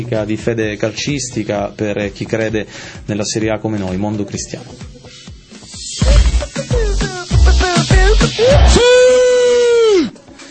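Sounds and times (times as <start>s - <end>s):
speech: 0.0s - 5.0s
man screaming wildly: 6.7s - 10.2s.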